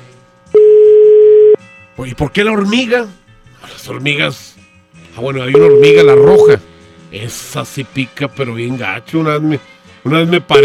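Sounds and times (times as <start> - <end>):
loud steady telephone tone as a phone call is placed: 0.5 - 1.6, 5.6 - 6.6
speech: 2.0 - 4.6, 5.2 - 10.6.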